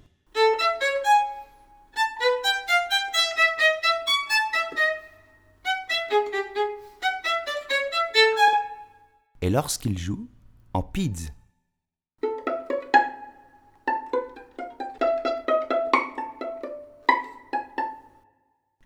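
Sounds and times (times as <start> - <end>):
violin played arco: 0.4 - 9.0, 12.2 - 18.2.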